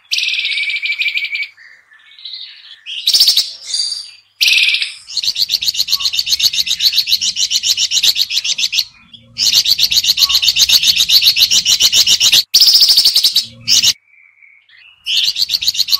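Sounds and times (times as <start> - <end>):
sooty-headed bulbul calling: 0.0 - 14.0, 14.6 - 15.9.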